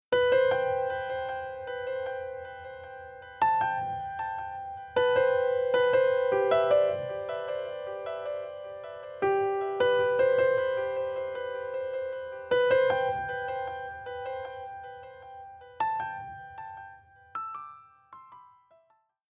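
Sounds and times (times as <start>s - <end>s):
piano with ping pong delay: 0.1s - 19.1s.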